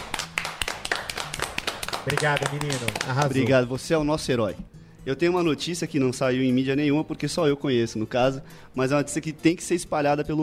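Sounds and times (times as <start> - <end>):
scattered applause from a small group: 0.0 - 3.4
speech: 2.0 - 10.4.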